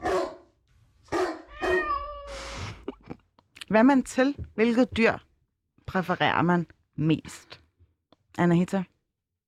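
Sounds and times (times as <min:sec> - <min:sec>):
dog barking in short sharp bursts: 0:00.0 - 0:00.5, 0:01.1 - 0:02.0
drawn-out meowing cry: 0:01.5 - 0:02.5
speech: 0:03.7 - 0:05.3, 0:05.9 - 0:07.6, 0:08.4 - 0:08.9.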